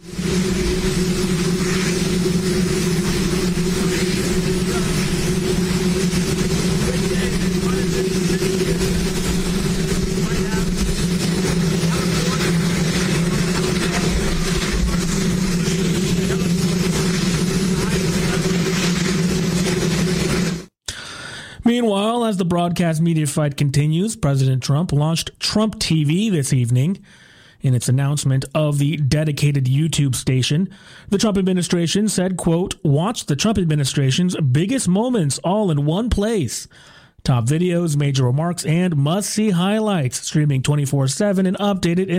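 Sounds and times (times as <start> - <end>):
helicopter engine roaring at a ribbon-cutting ceremony for a helipad: 0.0 - 20.7
speech: 22.7 - 42.1.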